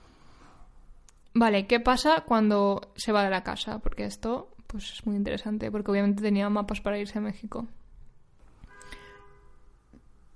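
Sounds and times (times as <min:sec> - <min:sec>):
speech: 0:01.4 - 0:07.8
car horn honking outside: 0:08.6 - 0:09.8.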